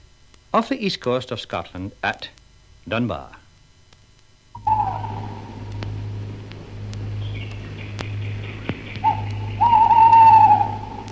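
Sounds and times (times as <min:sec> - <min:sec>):
speech: 0:00.5 - 0:03.4
steady low hum: 0:01.2 - 0:11.0
faint clicks: 0:03.4 - 0:11.0
owl hooting: 0:04.6 - 0:11.0.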